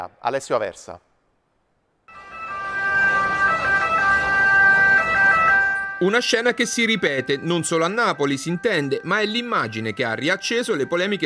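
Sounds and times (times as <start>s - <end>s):
speech: 0.0s - 1.1s, 6.0s - 11.2s
dense street and engine noise: 2.1s - 6.1s
ambulance siren wailing in traffic in Naples: 2.1s - 11.2s.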